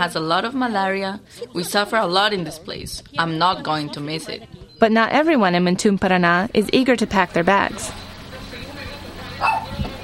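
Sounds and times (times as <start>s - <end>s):
speech: 0.0s - 8.1s
quiet outdoor hum: 0.0s - 10.0s
dog barking: 9.4s - 9.8s.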